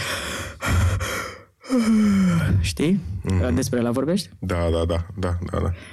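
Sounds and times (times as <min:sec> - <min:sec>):
person yawning with deep inhale: 0:00.6 - 0:02.6
speech: 0:01.7 - 0:05.9.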